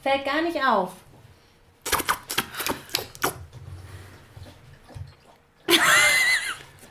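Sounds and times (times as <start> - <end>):
speech: 0.0 - 1.0
dog lapping water from a bowl: 1.9 - 6.1.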